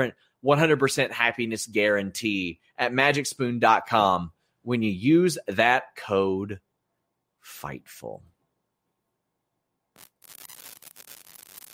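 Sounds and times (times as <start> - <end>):
speech: 0.0 - 6.7, 7.4 - 8.3
broadband static hiss crackling on call line: 10.0 - 11.7.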